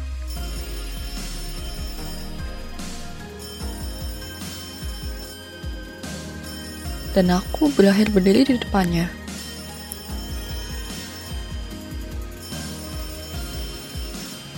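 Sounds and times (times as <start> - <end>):
droning background of music or ambience: 0.0 - 14.5
telephone ringing: 0.3 - 14.5
speech: 7.2 - 9.2.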